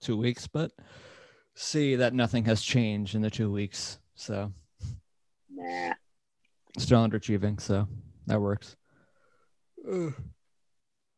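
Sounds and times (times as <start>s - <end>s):
speech: 0.0s - 6.0s, 6.8s - 8.8s, 9.8s - 10.4s
person yawning: 9.8s - 10.4s.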